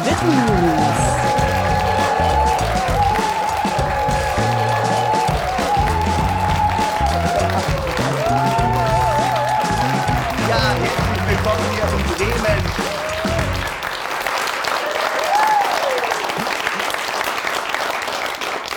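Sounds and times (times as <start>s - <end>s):
laughter: 0.0s - 13.8s
large live studio audience in Bremen Germany clapping: 0.0s - 18.7s
speech: 0.2s - 1.0s.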